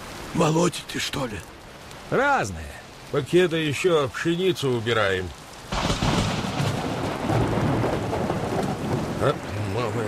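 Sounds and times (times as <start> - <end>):
heavy rain pouring: 0.0 - 10.0
speech: 0.4 - 5.4
deep thunder rumbling through the storm: 5.7 - 10.0.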